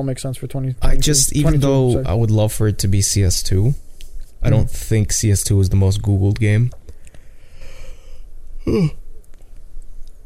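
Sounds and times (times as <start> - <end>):
speech: 0.0 - 3.8, 4.4 - 6.8, 8.6 - 9.0
person yawning: 8.6 - 9.0.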